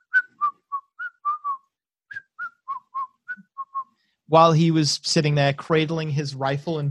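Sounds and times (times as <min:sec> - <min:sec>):
man on guard duty whistling a short tune: 0:00.0 - 0:04.0
speech: 0:04.3 - 0:06.8.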